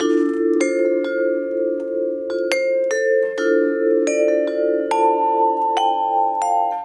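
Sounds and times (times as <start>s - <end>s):
lounge music loops: 0.0s - 6.8s.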